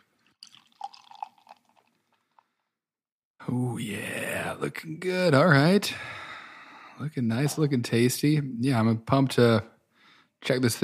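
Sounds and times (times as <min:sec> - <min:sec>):
quiet fizz of beer: 0:00.0 - 0:02.6
beer glugging and splashing as poured into a glass: 0:00.2 - 0:02.5
speech: 0:03.4 - 0:06.2, 0:07.0 - 0:09.7, 0:10.4 - 0:10.8.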